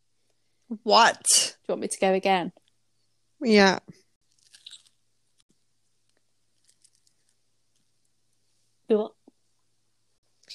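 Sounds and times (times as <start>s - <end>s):
speech: 0.7s - 2.6s, 3.4s - 4.0s, 8.9s - 9.2s
faint chewing: 4.2s - 5.4s, 6.0s - 8.0s
crisp crunching bite of a food item: 4.3s - 5.0s.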